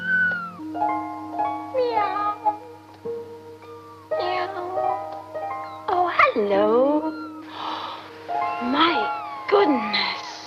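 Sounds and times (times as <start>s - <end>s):
drawn-out cat-like meows with sliding pitch: 0.0s - 0.6s, 8.4s - 9.7s
steady sustained musical tones: 0.0s - 10.4s.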